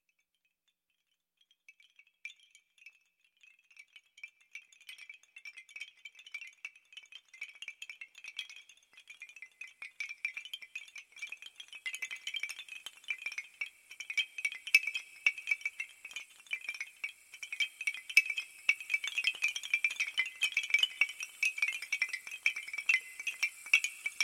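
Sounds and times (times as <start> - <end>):
bamboo wind chimes: 0.0 - 24.2
rainstick: 1.7 - 24.2
tingsha cymbals: 3.3 - 24.2
singing bowls for sound meditation: 13.4 - 24.2.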